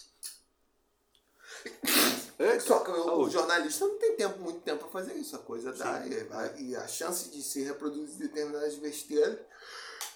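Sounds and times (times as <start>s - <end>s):
loud sneeze: 1.6s - 2.4s
speech: 2.4s - 9.8s
brief sharp intake of breath: 9.5s - 10.1s.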